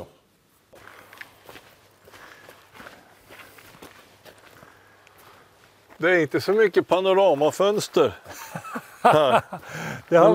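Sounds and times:
footsteps walking: 0:00.5 - 0:10.3
speech: 0:06.0 - 0:08.4, 0:09.0 - 0:10.3
laughter: 0:08.2 - 0:10.3.

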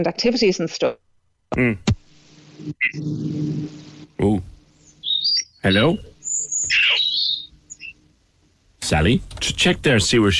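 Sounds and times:
speech: 0:00.0 - 0:01.9, 0:02.6 - 0:04.5, 0:05.6 - 0:06.1, 0:08.9 - 0:10.3
seagull-like squawks on a phone line: 0:06.6 - 0:07.9.

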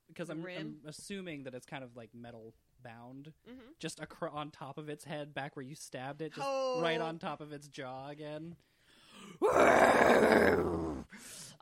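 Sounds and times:
speech: 0:00.2 - 0:11.6
human voice imitating a wounded creature groaning: 0:09.4 - 0:11.1
short breathy exhale: 0:11.1 - 0:11.6.

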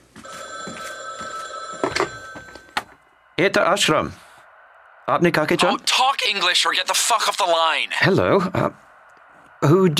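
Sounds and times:
telephone bell ringing: 0:00.2 - 0:03.0
speech: 0:03.4 - 0:04.2, 0:05.1 - 0:08.8, 0:09.6 - 0:09.9.

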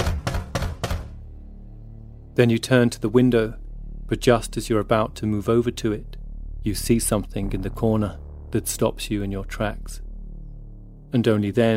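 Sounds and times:
heavy banging on a locked cabin door: 0:00.0 - 0:01.2
speech: 0:02.4 - 0:10.0, 0:11.1 - 0:11.7.

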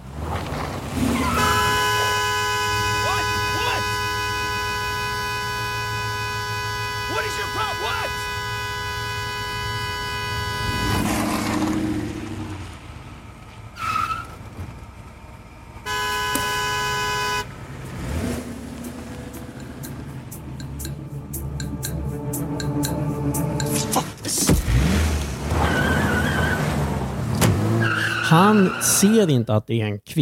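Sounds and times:
tires screeching: 0:00.0 - 0:29.1
car engines roaring: 0:00.0 - 0:29.2
rumbling traffic: 0:00.0 - 0:29.2
car horns blaring in long sustained blasts: 0:01.2 - 0:11.7, 0:15.8 - 0:24.9, 0:27.5 - 0:29.1
speech: 0:28.4 - 0:30.2.

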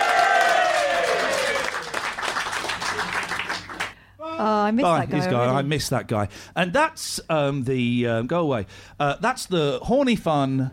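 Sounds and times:
high whoop sliding downward: 0:00.0 - 0:01.9
audience applauding: 0:00.0 - 0:04.0
speech: 0:04.4 - 0:10.7.

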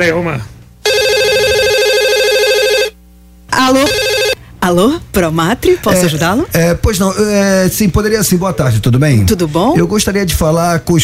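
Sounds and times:
speech: 0:00.0 - 0:00.5, 0:03.6 - 0:11.0
telephone warbling electronic ring tone while a call is placed: 0:00.8 - 0:03.0, 0:03.6 - 0:04.4.

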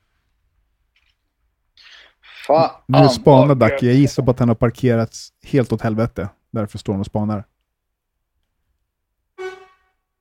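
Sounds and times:
speech: 0:02.5 - 0:07.5
car horn honk: 0:09.4 - 0:10.0.

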